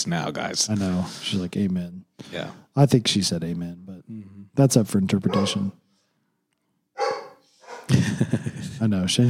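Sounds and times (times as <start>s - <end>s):
speech: 0.0s - 5.8s, 7.9s - 9.2s
pet dog barking: 5.3s - 5.8s, 7.0s - 7.9s
laughter: 7.9s - 9.2s.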